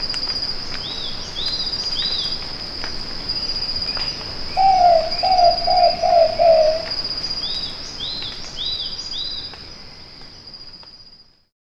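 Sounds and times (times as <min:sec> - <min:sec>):
steady high insect drone: 0:00.0 - 0:10.7
arched chirps from another bird: 0:04.0 - 0:09.4
whiskered pitta giving low whistled notes: 0:04.6 - 0:06.9.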